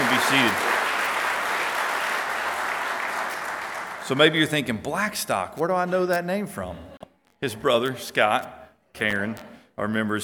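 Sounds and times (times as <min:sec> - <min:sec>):
large audience applauding: 0:00.0 - 0:04.6
speech: 0:00.3 - 0:00.7, 0:04.1 - 0:10.2.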